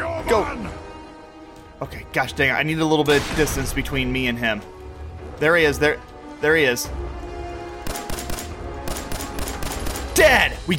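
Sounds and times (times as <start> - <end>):
speech: 0.3 - 0.8, 1.8 - 4.8, 5.4 - 7.2, 10.2 - 10.7
video game gunfire: 7.8 - 10.3.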